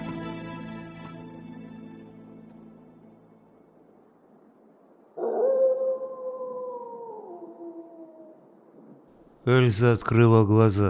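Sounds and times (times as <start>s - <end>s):
she-wolf howling: 5.2s - 8.4s
speech: 9.5s - 10.8s.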